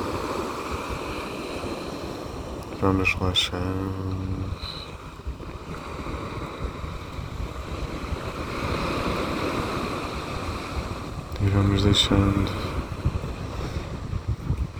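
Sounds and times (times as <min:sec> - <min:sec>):
small sea waves on sand: 0:00.0 - 0:14.7
speech: 0:02.8 - 0:04.8, 0:11.5 - 0:12.8.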